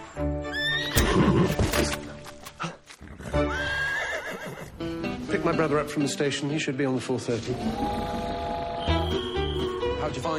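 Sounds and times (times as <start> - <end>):
horse whinnying: 0.5 - 1.9, 3.0 - 4.8
speech: 5.5 - 9.2, 10.0 - 10.3.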